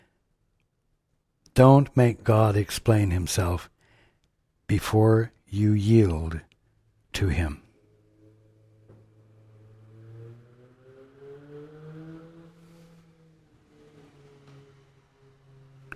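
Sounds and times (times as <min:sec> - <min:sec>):
speech: 0:01.6 - 0:03.7, 0:04.7 - 0:06.5, 0:07.2 - 0:07.6
car driving by with steady engine drone: 0:06.6 - 0:15.9.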